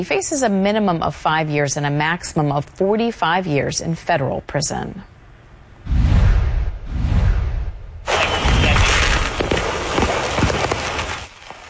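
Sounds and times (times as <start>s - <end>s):
speech: 0.0s - 5.1s
deep rumbling booms of exploding fireworks: 5.9s - 11.3s
fireworks barrage crackling and popping: 8.1s - 11.6s.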